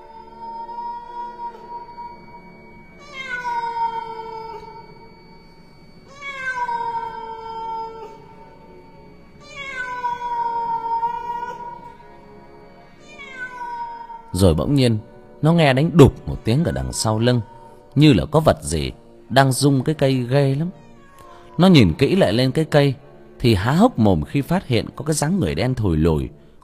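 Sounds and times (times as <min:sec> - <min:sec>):
big black cat meowing eerily at night: 0:00.0 - 0:05.2, 0:06.0 - 0:12.1, 0:12.9 - 0:14.5, 0:16.1 - 0:17.9, 0:20.7 - 0:22.0
low hum: 0:00.0 - 0:26.6
speech: 0:14.4 - 0:20.8, 0:21.6 - 0:26.4.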